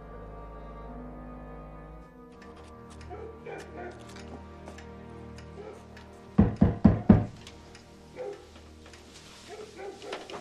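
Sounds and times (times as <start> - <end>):
knocking on a wooden door: 6.4 - 7.4.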